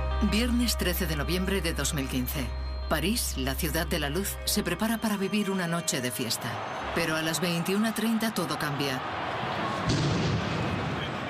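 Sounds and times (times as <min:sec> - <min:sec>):
speech: 0:00.2 - 0:10.1
faint distant explosion: 0:09.8 - 0:11.2.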